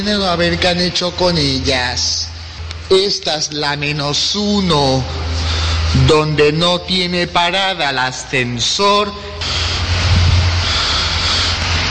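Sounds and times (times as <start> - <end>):
speech: 0.0 - 2.3, 2.9 - 9.6
car engine rumble driving into an underground parking garage: 0.0 - 11.8.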